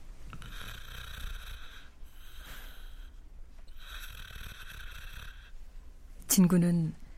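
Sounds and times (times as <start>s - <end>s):
elderly man snoring softly while lying asleep: 0.3s - 5.6s
speech: 6.4s - 7.0s.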